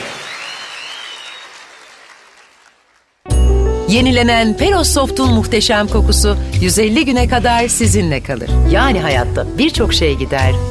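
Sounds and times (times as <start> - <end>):
audience applause: 0.0 - 3.2
speech: 3.9 - 10.6.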